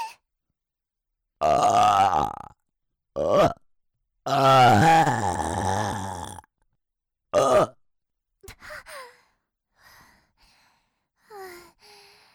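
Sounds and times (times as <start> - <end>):
person burping: 1.4 - 2.6, 3.2 - 3.6, 4.3 - 6.5, 7.4 - 7.8
breaths and small sighs: 8.4 - 12.3.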